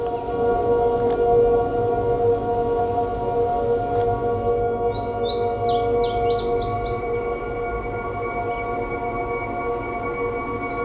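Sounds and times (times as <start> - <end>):
low hum: 0.0 - 10.8
male Indigo Bunting song: 4.4 - 10.8.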